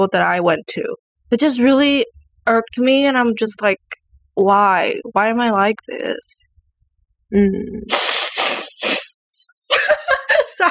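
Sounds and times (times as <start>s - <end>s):
speech: 0.0s - 6.5s, 7.3s - 9.1s
person blowing nose with breathy bursts and honking snorts: 7.9s - 9.1s
laughter: 9.7s - 10.6s.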